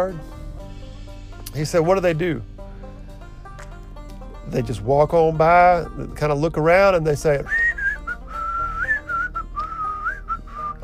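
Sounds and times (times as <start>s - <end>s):
speech: 0.0s - 0.3s, 1.5s - 2.5s, 4.5s - 7.6s
person whistling a wavering tune: 7.5s - 10.8s.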